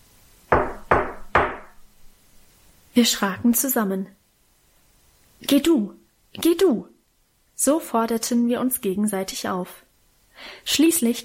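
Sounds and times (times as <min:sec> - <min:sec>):
knocking on the wooden front door of a house: 0:00.5 - 0:01.8
speech: 0:03.0 - 0:04.2, 0:05.5 - 0:06.9, 0:07.6 - 0:09.8, 0:10.4 - 0:11.2.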